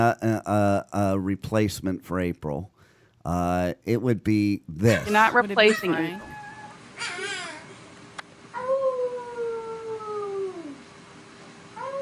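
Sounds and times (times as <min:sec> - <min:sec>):
speech: 0:00.0 - 0:06.4, 0:07.0 - 0:07.3
long drawn-out child's wail: 0:05.6 - 0:07.8, 0:08.5 - 0:10.8, 0:11.8 - 0:12.0
brief wavering dog howl: 0:05.7 - 0:07.3, 0:08.6 - 0:10.8, 0:11.8 - 0:12.0.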